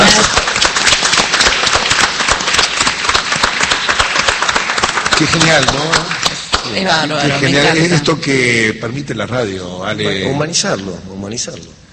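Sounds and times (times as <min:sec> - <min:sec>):
large crowd applauding: 0:00.0 - 0:07.9
speech: 0:05.2 - 0:06.1, 0:06.7 - 0:11.9.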